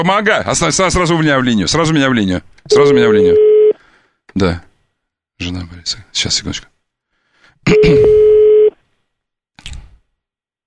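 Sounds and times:
speech: 0:00.0 - 0:03.5, 0:04.4 - 0:04.7, 0:05.4 - 0:06.7, 0:07.6 - 0:08.3
telephone ringback tone: 0:02.7 - 0:03.8, 0:07.7 - 0:08.7.

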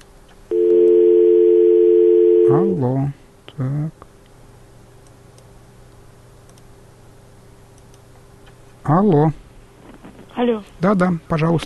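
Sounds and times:
steady telephone line tone after a dropped call: 0:00.5 - 0:02.8
speech: 0:02.5 - 0:04.1, 0:08.9 - 0:09.4, 0:10.4 - 0:11.6.

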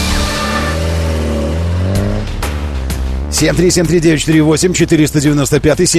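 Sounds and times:
car engine revving: 0:00.0 - 0:04.5
speech: 0:03.4 - 0:05.9.

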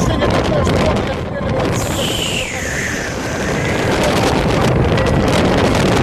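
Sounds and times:
strong gusting wind against the microphone during a snow squall: 0:00.0 - 0:06.0
thin high whistle of wind: 0:01.8 - 0:04.2.

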